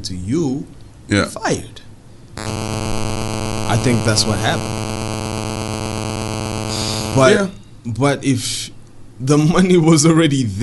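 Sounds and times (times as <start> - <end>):
speech: 0.0 - 2.9, 3.8 - 4.8, 7.1 - 10.6
electronic buzz of mobile phone interference on the recording: 2.4 - 7.5.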